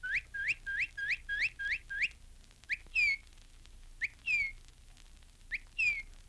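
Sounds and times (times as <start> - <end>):
northern cardinal song: 0.0 - 3.2, 4.0 - 4.6, 5.5 - 6.1.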